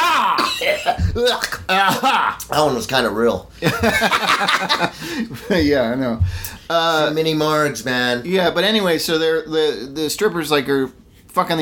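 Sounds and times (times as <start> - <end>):
raspy cough from something stuck in the throat: 0.4 - 1.7
speech: 0.8 - 11.6
laughter: 3.6 - 5.7.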